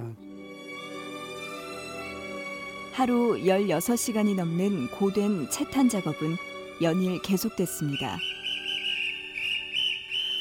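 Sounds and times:
speech: 0:03.0 - 0:08.4
shrill whistle blown to rouse workers: 0:07.8 - 0:10.3.

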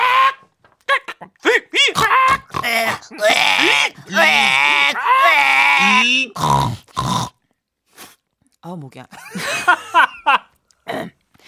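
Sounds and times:
voice imitating a startled pig squealing and grunting: 0:00.0 - 0:07.4.

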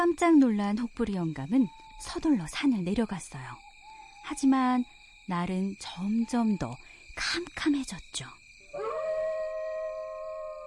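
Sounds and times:
speech: 0:00.0 - 0:03.7, 0:04.3 - 0:08.9
single long wolf howl: 0:08.7 - 0:10.6.

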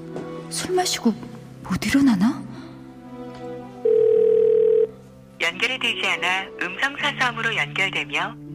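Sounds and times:
speech: 0:00.5 - 0:02.6, 0:05.5 - 0:08.4
steady electronic phone ringback tone of an outgoing call: 0:03.8 - 0:04.9.

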